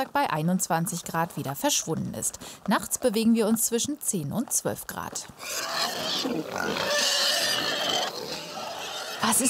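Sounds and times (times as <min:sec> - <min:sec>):
speech: 0:00.0 - 0:08.0, 0:09.2 - 0:09.4
pigs snorting and smacking in a pigsty: 0:00.9 - 0:09.4
pigs grunting and squealing in a pigsty: 0:05.4 - 0:09.4.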